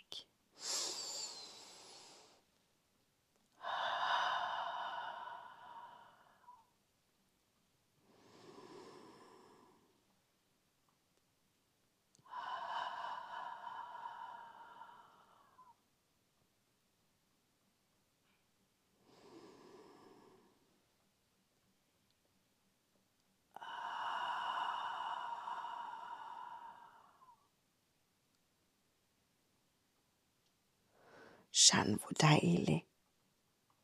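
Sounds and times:
slow deep breathing in and out: 0.6 - 2.5, 3.5 - 6.8, 8.0 - 10.2, 12.2 - 15.9, 19.0 - 21.0, 23.5 - 27.6, 30.9 - 31.5
speech: 31.6 - 32.9.

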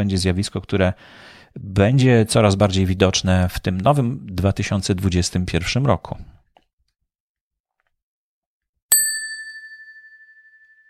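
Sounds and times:
speech: 0.0 - 6.4
small bell ding: 8.9 - 10.8.

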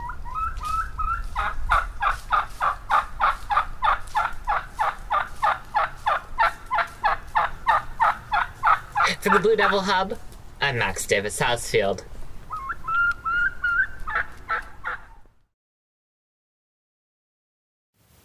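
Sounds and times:
turkey gobbling in warbling pulsing calls: 0.0 - 10.3, 12.4 - 15.4
speech: 9.2 - 12.1.

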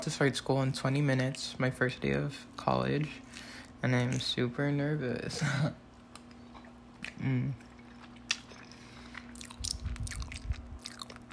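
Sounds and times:
speech: 0.0 - 5.8, 7.2 - 7.7
chewing oatmeal with sunflower butter with wet sticky mouth clicks: 6.1 - 11.3
brief low hum from the eater: 7.1 - 7.6.

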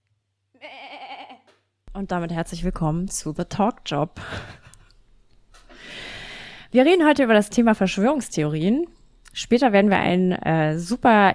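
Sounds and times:
sheep bleating: 0.6 - 1.5
speech: 2.0 - 4.6, 6.7 - 11.3.

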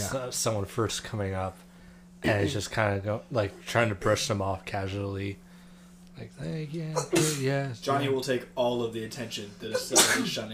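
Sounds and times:
speech: 0.1 - 5.4, 6.2 - 10.5
sneeze: 7.0 - 7.5, 9.7 - 10.4.

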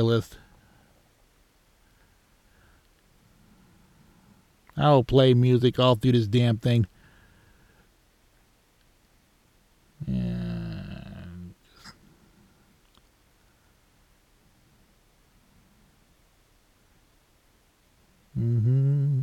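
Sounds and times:
speech: 0.0 - 0.4, 4.8 - 6.9, 10.0 - 10.4
person humming: 10.0 - 11.9, 18.3 - 19.2.

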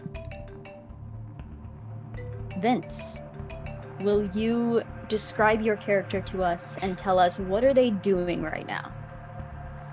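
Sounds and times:
cell phone ringing with chiming electronic tones: 0.0 - 1.0, 2.2 - 4.3
low hum: 0.0 - 9.9
speech: 2.6 - 3.2, 4.0 - 9.0.

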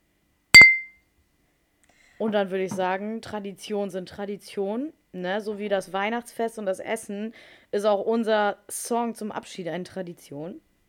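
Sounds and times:
glasses of iced tea clinking in a toast: 0.6 - 0.9
speech: 2.2 - 10.7.

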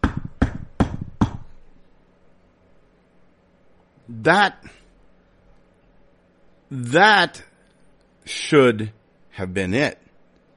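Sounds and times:
loud heavy knocks on a door: 0.0 - 1.5
speech: 4.2 - 4.8, 6.7 - 7.5, 8.3 - 10.0.

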